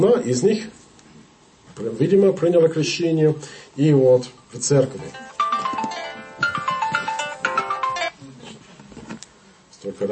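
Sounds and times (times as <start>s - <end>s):
speech: 0.0s - 0.8s, 1.8s - 5.3s, 9.8s - 10.1s
mobile phone ringing with an electronic melody: 5.1s - 8.2s.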